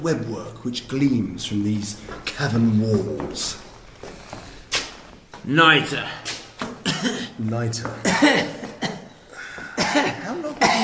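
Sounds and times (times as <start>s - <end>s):
speech: 0.0s - 3.7s, 5.4s - 6.4s, 7.0s - 8.9s, 9.9s - 10.8s
harsh rasping coughing with wheezy tail: 6.3s - 7.4s, 8.0s - 10.8s.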